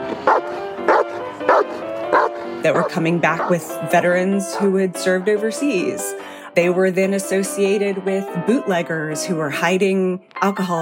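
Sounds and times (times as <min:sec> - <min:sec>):
dog barking: 0:00.3 - 0:03.5
speech: 0:02.6 - 0:10.8.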